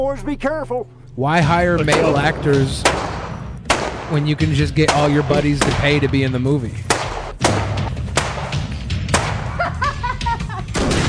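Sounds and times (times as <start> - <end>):
speech: 0.0 - 3.0, 4.1 - 6.9
low rumble: 0.0 - 4.9
gunshots in a film gunfight scene: 1.8 - 9.8, 10.7 - 11.0
laughter: 9.4 - 10.8.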